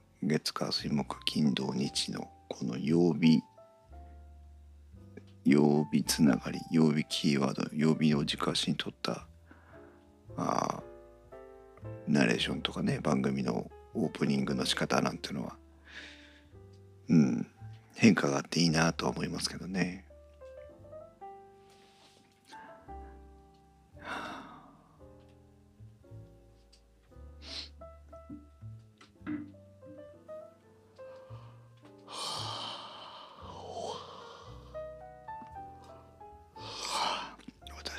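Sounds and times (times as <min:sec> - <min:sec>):
speech: 0:00.2 - 0:03.5, 0:05.5 - 0:09.3, 0:10.4 - 0:10.9, 0:11.8 - 0:16.1, 0:17.1 - 0:20.1
soft breathing: 0:09.4 - 0:10.2, 0:15.8 - 0:16.6, 0:21.5 - 0:23.4, 0:31.0 - 0:34.9
person yawning with voiced groans: 0:24.0 - 0:24.8, 0:32.1 - 0:34.7, 0:36.6 - 0:37.4.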